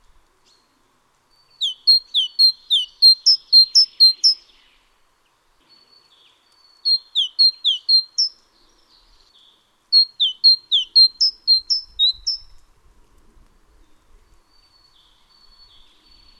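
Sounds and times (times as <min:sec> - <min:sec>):
great tit Parus major major song: 0:01.6 - 0:04.5, 0:06.9 - 0:08.3, 0:10.0 - 0:12.4.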